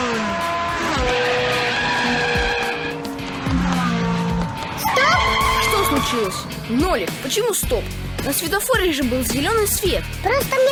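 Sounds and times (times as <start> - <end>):
tires squealing and skidding in a computer driving game: 0.0 - 7.3
car engine revving and accelerating in a computer driving game: 0.0 - 8.2
speech: 6.3 - 10.7.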